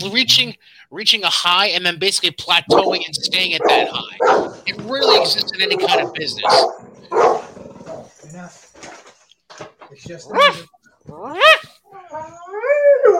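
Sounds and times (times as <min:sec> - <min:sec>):
speech: 0:00.0 - 0:07.4, 0:09.9 - 0:11.7
neighbors' dogs barking and yipping: 0:02.7 - 0:08.2, 0:10.2 - 0:13.1
dog whining howl: 0:10.3 - 0:13.1.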